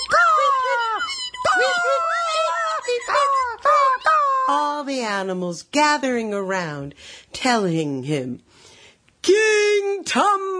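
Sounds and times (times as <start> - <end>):
voice imitating bird calls: 0.0 - 4.7
speech: 4.8 - 10.5.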